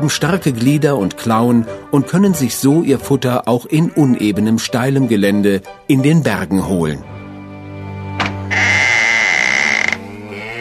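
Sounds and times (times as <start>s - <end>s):
speech: 0.0s - 7.2s
cattle lowing in a barn: 8.5s - 10.5s.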